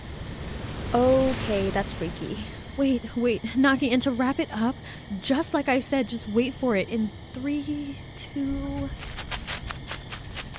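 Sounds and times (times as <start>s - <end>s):
gust of wind in a forest at night: 0.0s - 5.2s
speech: 0.9s - 9.3s.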